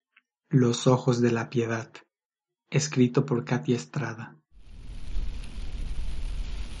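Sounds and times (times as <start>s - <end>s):
speech: 0.5s - 2.0s, 2.7s - 4.4s
heavy rain pouring at night: 4.6s - 6.7s
thunder rumbling: 4.6s - 6.7s.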